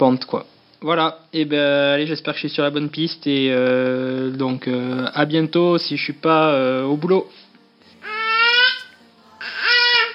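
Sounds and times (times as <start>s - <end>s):
speech: 0.0s - 7.4s
baby babbling: 8.0s - 10.1s.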